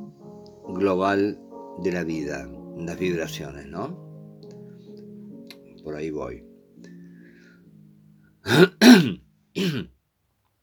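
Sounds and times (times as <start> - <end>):
speech: 0.7 - 4.0, 5.8 - 6.5, 8.4 - 10.0
person coughing: 8.5 - 9.9.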